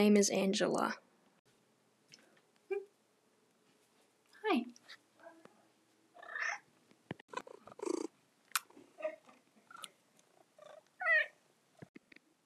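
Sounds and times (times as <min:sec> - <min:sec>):
speech: 0:00.0 - 0:01.1, 0:04.5 - 0:04.8
low purring hum: 0:06.1 - 0:11.4
domestic cats meowing while being petted: 0:06.2 - 0:06.7, 0:10.6 - 0:11.4.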